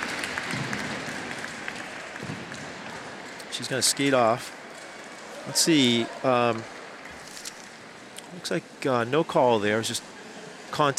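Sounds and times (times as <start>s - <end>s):
large crowd applauding in a hockey arena: 0.0s - 7.2s
speech: 3.6s - 4.6s, 5.5s - 6.8s, 8.3s - 10.1s, 10.7s - 10.9s.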